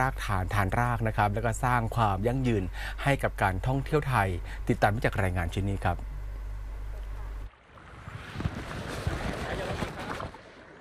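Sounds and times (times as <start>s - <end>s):
speech: 0.0s - 6.1s
low hum: 0.0s - 10.7s
wind and water wash on a lake: 7.5s - 10.7s.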